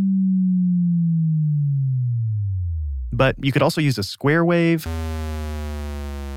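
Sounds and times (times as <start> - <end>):
pure sine tone for a sound-design boom sliding down in pitch: 0.0 - 3.1, 4.9 - 6.3
speech: 3.2 - 5.2.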